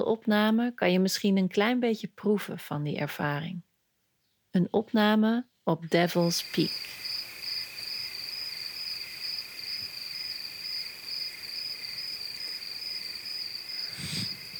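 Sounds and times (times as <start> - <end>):
speech: 0.0 - 3.7, 4.5 - 7.1
crickets chirping at night in the wilderness at Devil's Peak: 6.4 - 14.5.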